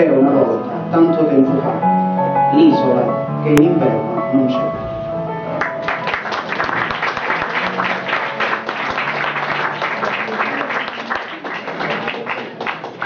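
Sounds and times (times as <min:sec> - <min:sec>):
speech: 0:00.0 - 0:01.9, 0:02.5 - 0:04.8
crowd applauding: 0:05.6 - 0:13.0.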